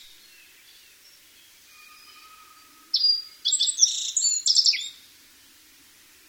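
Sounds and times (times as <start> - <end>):
black-faced bunting singing: 1.5 - 5.6
faint background bird calls: 1.7 - 5.2.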